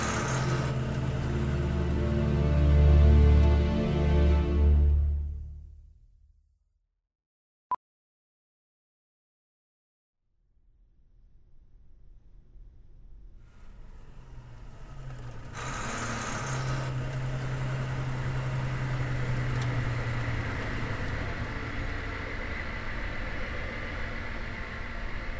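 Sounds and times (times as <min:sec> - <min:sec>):
Hummer heavy engine rumbling driving down a ramp into a parking garage: 0:00.0 - 0:05.4, 0:13.5 - 0:25.3.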